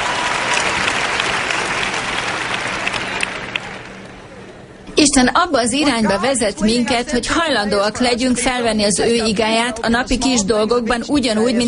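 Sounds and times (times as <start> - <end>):
audience applauding: 0.0 - 4.5
speech: 5.0 - 11.6.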